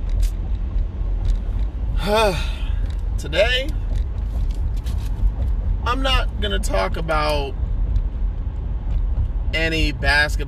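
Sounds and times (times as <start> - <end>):
low engine rumble inside a car interior: 0.0 - 10.4
voiced exclamation: 2.0 - 2.6
speech: 2.1 - 2.6, 3.2 - 3.8, 5.9 - 7.6, 9.5 - 10.4.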